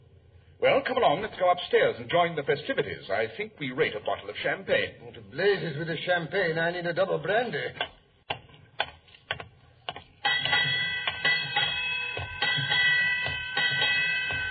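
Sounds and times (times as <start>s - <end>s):
speech: 0.6s - 8.0s
ship's bell striking eight bells at midnight: 10.2s - 14.4s.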